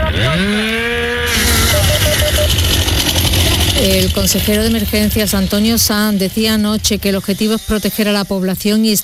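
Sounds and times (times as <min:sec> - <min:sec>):
chainsaw cutting at a wildfire site worked by firefighting crews: 0:00.1 - 0:07.1
speech: 0:03.8 - 0:09.0.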